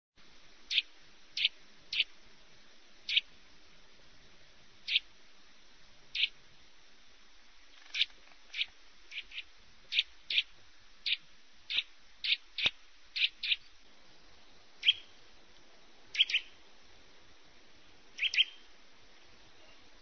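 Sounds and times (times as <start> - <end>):
Eurasian nuthatch: 0.6 - 2.2, 3.0 - 3.3, 4.8 - 5.1, 6.1 - 6.4, 7.7 - 13.8, 14.8 - 15.2, 16.0 - 16.6, 18.1 - 18.8.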